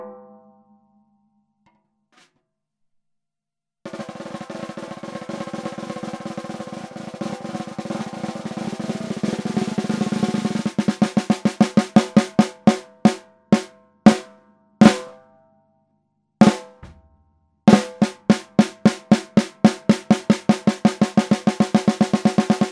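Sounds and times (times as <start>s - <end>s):
brass pork pie snare drum: 3.9s - 14.3s, 14.8s - 15.2s, 16.4s - 17.0s, 17.7s - 22.7s.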